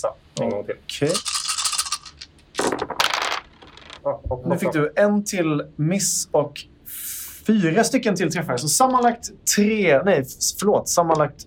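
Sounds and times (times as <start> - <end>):
speech: 0.0 - 1.3, 4.0 - 6.7, 7.4 - 11.4
yellow plastic dice rattling in a cup during a game: 1.0 - 4.0.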